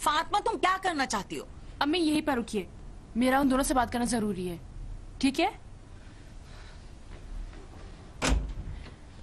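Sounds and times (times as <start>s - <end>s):
speech: 0.0s - 5.6s
door to a room swinging open: 8.2s - 8.9s.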